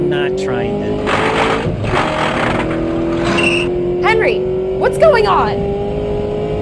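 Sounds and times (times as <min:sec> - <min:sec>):
car engine roaring as car speeds along a road: 0:00.0 - 0:06.6
speech: 0:00.1 - 0:02.0, 0:04.1 - 0:05.8
rushing tyre noise on road: 0:01.0 - 0:03.7.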